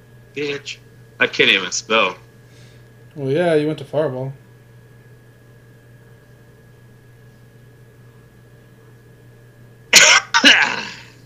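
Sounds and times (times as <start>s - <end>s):
speech: 0.4s - 2.2s, 3.2s - 4.4s
person with a cold coughing: 10.0s - 11.2s
raspy throat clearing from a person with a cold: 10.0s - 11.2s.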